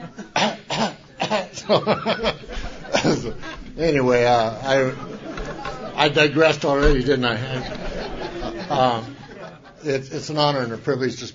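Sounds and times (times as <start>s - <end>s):
laughter: 0.0s - 0.4s, 1.1s - 10.3s
woman coughing in an audience at an Alcoholics Anonymous meeting: 0.3s - 1.5s
speech: 1.7s - 2.4s, 3.2s - 5.1s, 6.0s - 7.8s, 8.7s - 9.1s, 9.8s - 11.3s.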